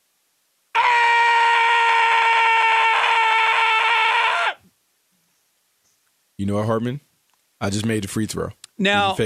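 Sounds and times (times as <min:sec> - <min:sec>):
loud human scream away from the microphone: 0:00.8 - 0:04.6
speech: 0:06.4 - 0:09.2.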